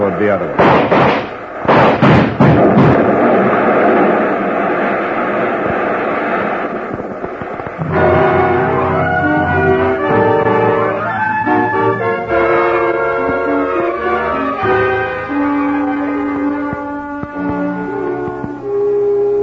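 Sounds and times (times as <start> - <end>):
car exploding as cordite powder in trunk and gasoline ignite: 0.0 - 16.6
music: 7.8 - 19.4.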